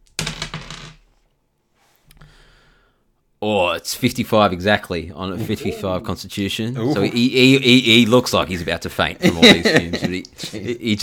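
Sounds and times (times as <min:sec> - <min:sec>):
dice rolling on a table for a tabletop role-playing game: 0:00.0 - 0:01.1
speech: 0:03.4 - 0:11.0
laughter: 0:05.3 - 0:06.2, 0:06.8 - 0:11.0.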